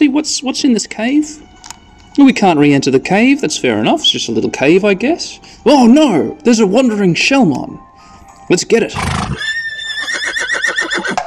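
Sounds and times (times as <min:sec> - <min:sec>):
speech: 0:00.0 - 0:01.6, 0:02.2 - 0:07.9, 0:08.5 - 0:09.5
horse whinnying: 0:08.9 - 0:11.2.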